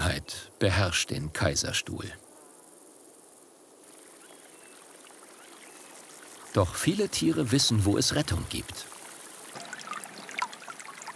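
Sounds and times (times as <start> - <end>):
speech: 0.1 - 2.2, 6.6 - 8.9
spring water bubbling out of rock at the foot of the Bartberg in the Kaiserstuhl: 5.0 - 11.1.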